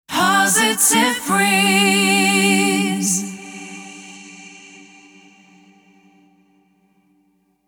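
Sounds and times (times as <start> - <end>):
person singing a cappella jingle in G major: 0.1 - 5.7.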